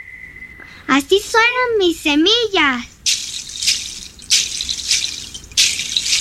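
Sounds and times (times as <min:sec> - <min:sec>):
speech: 0:00.9 - 0:02.9
claves wooden percussion sticks clicking together: 0:03.1 - 0:06.1.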